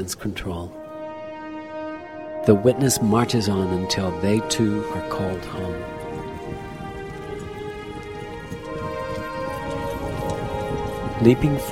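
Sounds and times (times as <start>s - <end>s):
speech: 0.0s - 0.8s, 2.4s - 6.0s, 11.2s - 11.7s
sustained tonal backdrop: 0.6s - 11.7s
constant wash of rain-like noise: 2.5s - 11.7s
horse hooves clip-clopping at an even pace: 4.4s - 11.7s.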